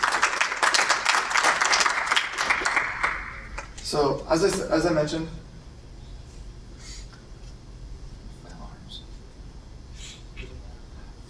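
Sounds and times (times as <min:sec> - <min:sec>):
room full of people clapping: 0:00.0 - 0:03.8
speech: 0:03.9 - 0:05.4.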